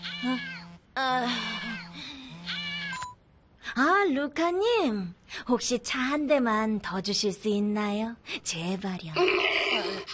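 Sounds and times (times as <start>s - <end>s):
cat meowing: 0.0s - 0.7s, 1.4s - 3.0s
speech: 3.8s - 10.1s.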